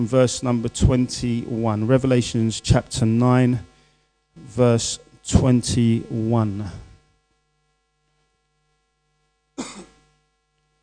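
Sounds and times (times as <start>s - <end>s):
speech: 0.0s - 3.7s, 4.6s - 6.8s
short sharp cough with a throaty rasp: 9.6s - 10.0s.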